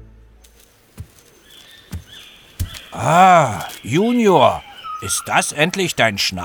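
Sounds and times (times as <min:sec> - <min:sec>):
slow heavy footsteps: 0:00.4 - 0:05.3
faint high bird chirps: 0:00.4 - 0:06.4
speech: 0:02.9 - 0:06.4.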